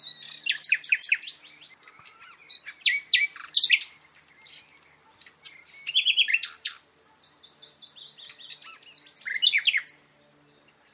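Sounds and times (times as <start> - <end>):
common nightingale Luscinia megarhynchos singing: 0.0 - 10.9.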